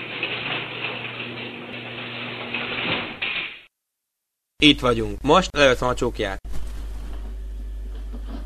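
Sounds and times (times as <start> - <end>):
garage door rumbling along its track: 0.0 - 3.7
speech: 4.6 - 6.5.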